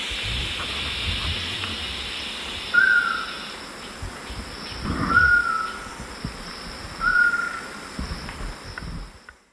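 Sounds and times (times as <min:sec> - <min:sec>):
hissy background noise: 0:00.0 - 0:09.5
screaming piha Lipaugus vociferans calling at a lek: 0:02.7 - 0:03.5, 0:05.1 - 0:05.9, 0:07.0 - 0:07.8.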